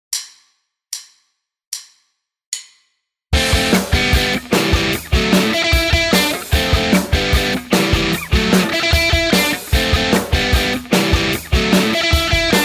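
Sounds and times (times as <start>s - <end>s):
short alternate-picking guitar riff in metal style: 3.4s - 12.6s.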